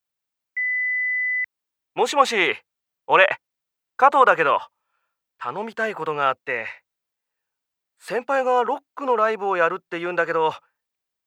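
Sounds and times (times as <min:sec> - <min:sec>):
answering machine electronic beep tone: 0:00.6 - 0:01.5
speech: 0:02.0 - 0:03.4, 0:04.0 - 0:04.8, 0:05.4 - 0:06.8, 0:08.0 - 0:10.7.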